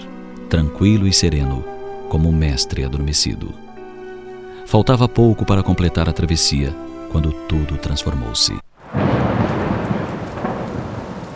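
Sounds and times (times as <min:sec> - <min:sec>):
speech: 0:00.5 - 0:03.6, 0:04.7 - 0:08.7
deep rolling thunder: 0:08.8 - 0:11.3
pouring rain in a heavy thunderstorm: 0:08.8 - 0:11.3.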